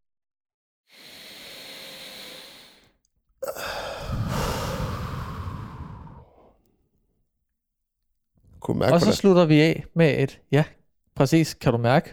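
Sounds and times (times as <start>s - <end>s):
deep inhale: 0.9s - 6.6s
fuller louder exhale: 0.9s - 6.6s
speech: 8.7s - 12.1s.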